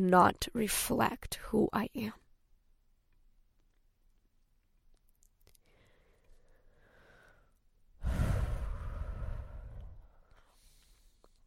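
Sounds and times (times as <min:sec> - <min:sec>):
speech: 0:00.0 - 0:02.2
person taking a long deep breath: 0:05.6 - 0:11.4.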